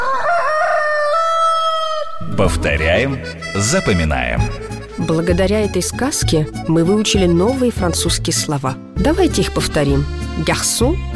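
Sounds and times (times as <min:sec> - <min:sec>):
rooster crowing: 0:00.0 - 0:02.2
speech: 0:02.4 - 0:11.1.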